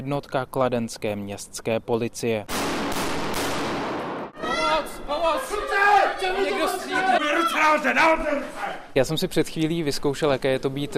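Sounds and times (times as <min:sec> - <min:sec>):
speech: 0:00.0 - 0:02.9, 0:06.2 - 0:10.9
rapid gunfire echoing through a large training hall: 0:02.5 - 0:04.3
overlapping voices shouting: 0:04.4 - 0:08.9.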